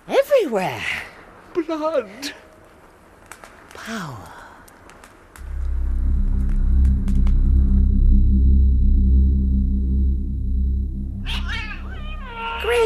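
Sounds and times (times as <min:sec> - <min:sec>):
speech: 0:00.4 - 0:02.4, 0:03.9 - 0:04.3
deep throbbing rumble: 0:05.4 - 0:12.8
cat yowling: 0:11.2 - 0:12.8.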